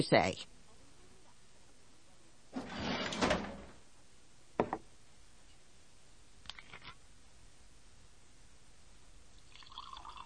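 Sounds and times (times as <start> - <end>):
speech: 0.0 - 0.6
wooden desk drawer sliding open with a scrape: 2.6 - 3.8
sharp knocks: 4.6 - 4.8.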